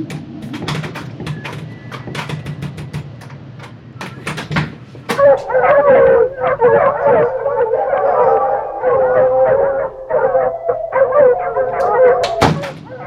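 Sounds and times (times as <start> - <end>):
thumping knocks: 0.0 - 12.9
several dogs howling together: 5.1 - 13.0.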